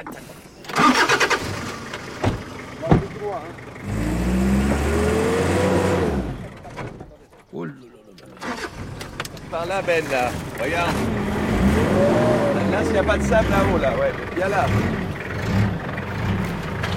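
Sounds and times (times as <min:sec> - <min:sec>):
4x4 car engine starting and revving: 0:00.6 - 0:07.1, 0:08.4 - 0:16.9
sharp knocks: 0:02.2 - 0:03.2
speech: 0:03.3 - 0:04.0, 0:09.5 - 0:11.1, 0:11.8 - 0:15.0.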